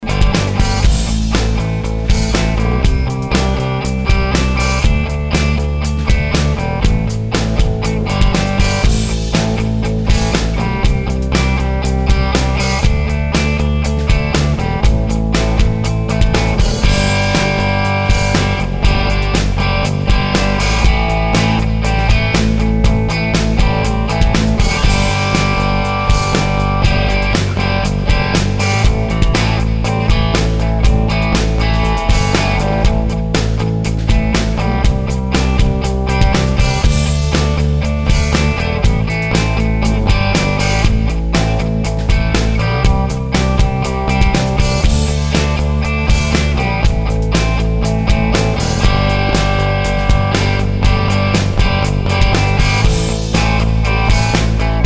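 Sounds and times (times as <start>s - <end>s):
maple thinline Telecaster electric guitar rhythm: 0.0s - 54.8s.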